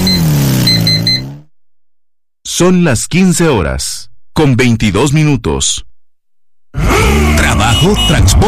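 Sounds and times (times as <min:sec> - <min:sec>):
CF Moto C4 quad bike engine revving: 0:00.0 - 0:01.5, 0:06.8 - 0:08.4
speech: 0:02.6 - 0:05.9, 0:06.8 - 0:08.4.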